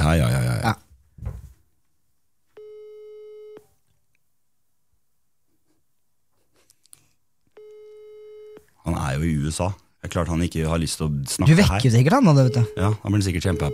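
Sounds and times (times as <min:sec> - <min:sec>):
speech: 0:00.1 - 0:00.8, 0:09.2 - 0:13.7
telephone ringback tone of a call to the USA: 0:02.6 - 0:03.7, 0:07.6 - 0:08.6, 0:12.3 - 0:13.7.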